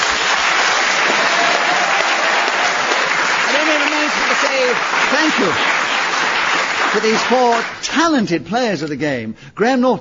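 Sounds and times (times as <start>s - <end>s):
studio audience applause: 0.0s - 7.9s
speech: 4.6s - 5.8s, 6.9s - 9.9s.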